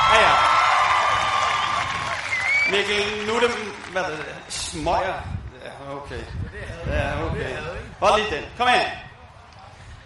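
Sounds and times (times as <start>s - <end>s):
crowd clapping: 0.0s - 4.6s
speech: 2.7s - 9.0s.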